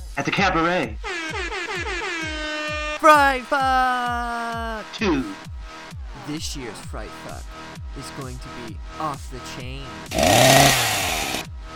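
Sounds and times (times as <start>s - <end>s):
speech: 0.2s - 1.9s, 3.0s - 5.4s, 6.3s - 11.0s
chainsaw revving: 10.0s - 11.5s.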